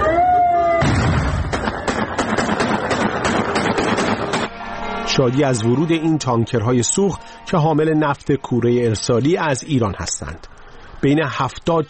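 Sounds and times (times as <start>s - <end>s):
RPG rockets fired into the air: 0.8s - 4.4s
sustained tone: 4.5s - 10.2s
speech: 5.2s - 11.8s.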